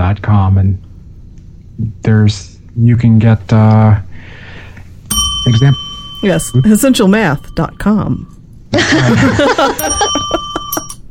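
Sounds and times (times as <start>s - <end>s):
speech: 0.2s - 0.9s, 1.8s - 4.0s, 5.4s - 10.2s
bell sound effect ringing: 5.1s - 11.0s.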